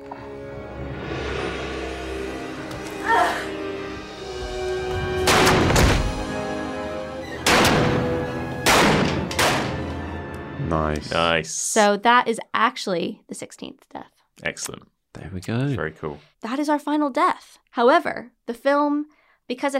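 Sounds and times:
steady tonal background: 0:00.0 - 0:11.4
gunshots in a film's climactic struggle scene: 0:05.2 - 0:06.3, 0:07.4 - 0:09.9
speech: 0:10.7 - 0:19.7.

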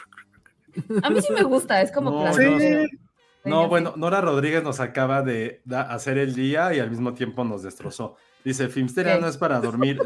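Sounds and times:
person vocally imitating shaving cream wiped off a microphone: 0:00.0 - 0:00.4, 0:02.3 - 0:03.8, 0:09.1 - 0:10.0
laughter: 0:00.7 - 0:03.0, 0:09.1 - 0:10.0
speech: 0:00.8 - 0:10.0.

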